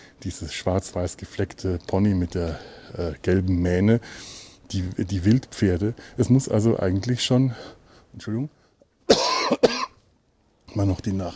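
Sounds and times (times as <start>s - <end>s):
speech: 0.2s - 8.6s, 10.8s - 11.3s
person coughing with chest congestion and phlegm: 9.1s - 10.0s.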